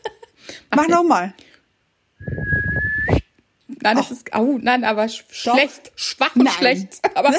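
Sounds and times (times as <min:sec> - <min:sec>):
speech: 0:00.7 - 0:01.4, 0:03.8 - 0:07.3
short weak human whistle: 0:02.2 - 0:03.2.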